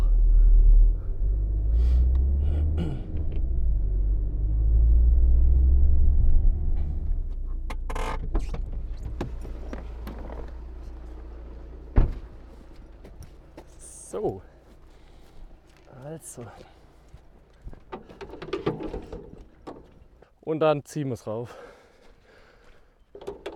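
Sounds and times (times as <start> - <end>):
car engine rumbling while turning around: 0.0 - 20.2
speech: 14.2 - 14.5, 16.2 - 16.8, 20.5 - 21.7.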